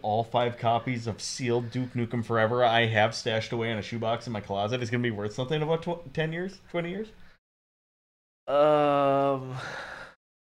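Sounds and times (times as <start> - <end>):
speech: 0.0 - 7.2, 8.5 - 9.9
person groaning: 8.5 - 10.0.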